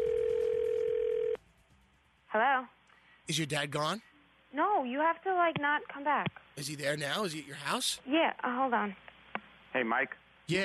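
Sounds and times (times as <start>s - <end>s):
telephone dial tone: 0.0s - 1.4s
speech: 2.3s - 9.1s, 9.7s - 10.6s.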